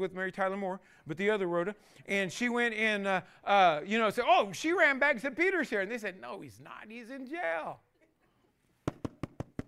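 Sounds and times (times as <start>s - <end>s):
speech: 0.0s - 7.9s
knocking on a door: 8.9s - 9.6s.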